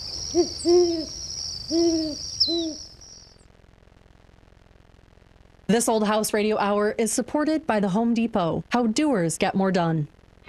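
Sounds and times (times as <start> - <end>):
horned owl hooting: 0.0 - 3.3
steady high-pitched insect drone: 0.0 - 3.4
speech: 0.3 - 2.2, 5.7 - 10.2.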